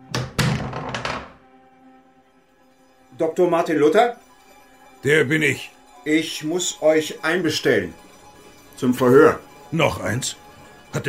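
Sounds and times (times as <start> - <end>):
heavy wooden door opening with thunks and clunks: 0.1 - 1.4
speech: 3.2 - 4.2, 5.0 - 8.0, 8.8 - 11.0.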